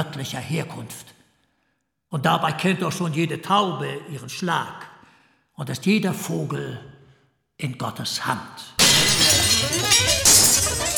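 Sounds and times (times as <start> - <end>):
speech: 0.0 - 1.2, 2.1 - 4.9, 5.6 - 6.9, 7.6 - 10.4
glass shards falling: 8.8 - 10.9
glass window shattering under thrown stones: 8.8 - 10.9.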